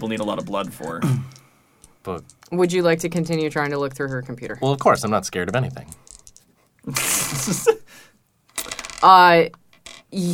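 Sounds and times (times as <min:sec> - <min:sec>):
speech: 0:00.0 - 0:01.4, 0:02.0 - 0:06.1, 0:06.8 - 0:08.1, 0:09.0 - 0:10.3
dice clattering and rattling across a hard surface: 0:02.1 - 0:06.5, 0:08.5 - 0:10.1.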